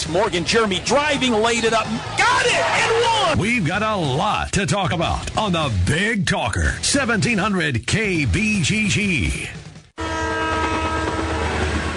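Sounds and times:
speech: 0.1s - 9.6s
train horn: 10.0s - 11.9s.

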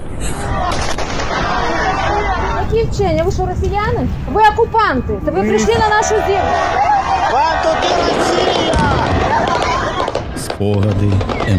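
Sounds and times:
indistinct voices murmuring: 0.1s - 11.5s
gunshots aimed at people: 0.6s - 1.7s, 8.0s - 11.5s
speech: 3.3s - 6.9s, 10.6s - 11.5s.

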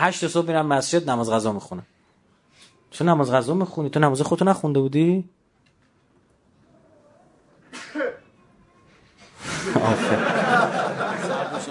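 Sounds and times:
speech: 0.0s - 2.0s, 2.9s - 5.4s
person sneezing: 7.7s - 8.3s
people laughing noisily: 9.4s - 11.6s.

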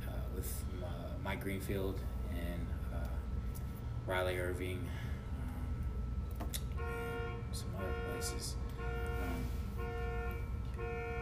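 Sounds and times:
low rumble: 0.0s - 11.1s
speech: 0.4s - 3.2s, 4.0s - 5.2s, 6.8s - 9.1s
car alarm going off outside: 6.7s - 11.1s.

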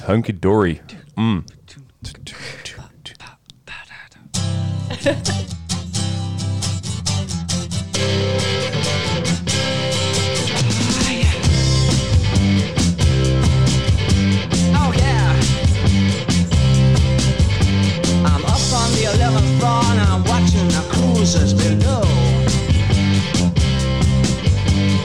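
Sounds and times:
speech: 0.0s - 2.6s, 5.0s - 5.6s
strummed electric guitars in a glam rock song intro: 4.4s - 25.0s
laughter: 4.9s - 5.5s
steady driving drums: 7.9s - 25.0s.

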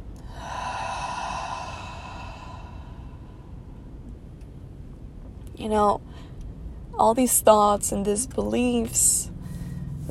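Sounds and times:
long deep breath out with a soft whistling tone: 0.2s - 4.0s
speech: 5.6s - 6.3s, 7.0s - 9.3s.

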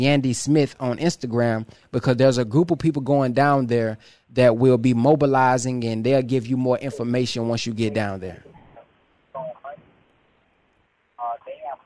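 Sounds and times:
speech: 0.0s - 8.5s
low phone line hiss: 0.0s - 11.8s
tinny phone-filtered broadcast voice in a caller's background: 6.7s - 9.9s, 11.2s - 11.8s.

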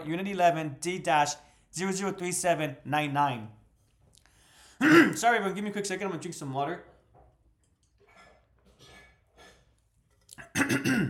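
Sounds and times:
speech: 0.0s - 3.6s, 4.8s - 6.9s, 10.6s - 11.0s
person clearing throat: 4.8s - 5.2s, 10.4s - 11.0s.

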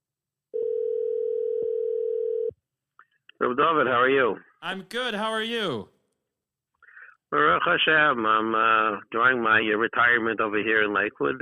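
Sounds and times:
telephone line tone as a call is placed: 0.5s - 2.5s
speech: 3.4s - 5.9s, 7.3s - 11.4s.

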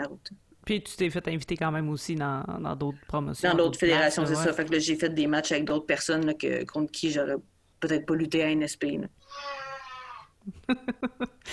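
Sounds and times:
speech: 0.0s - 9.6s, 10.4s - 11.5s
baby crying: 9.2s - 10.4s.

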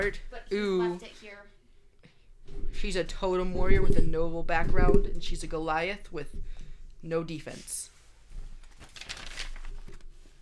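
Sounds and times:
speech: 0.0s - 1.5s, 2.8s - 7.9s
paper character sheet being handled, crinkling: 7.6s - 10.4s.

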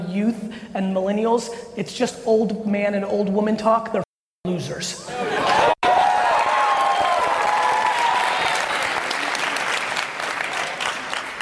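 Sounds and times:
speech: 0.2s - 5.7s
laughter: 5.1s - 6.0s
large crowd applauding: 5.4s - 11.4s.

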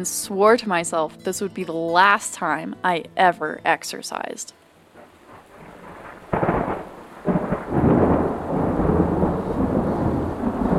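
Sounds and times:
speech: 0.0s - 4.7s
steady hiss of rain on the continental divide: 0.0s - 10.7s
thunder of an approaching thunderstorm on the continental divide: 5.0s - 10.7s.

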